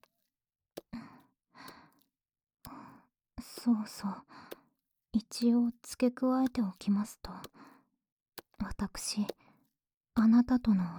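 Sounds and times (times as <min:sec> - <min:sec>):
soft quiet breathing with slow airy exhales: 0:00.8 - 0:02.0, 0:02.6 - 0:04.7, 0:06.8 - 0:07.9
speech: 0:03.6 - 0:04.4, 0:05.2 - 0:07.7, 0:08.8 - 0:09.4, 0:10.2 - 0:10.9.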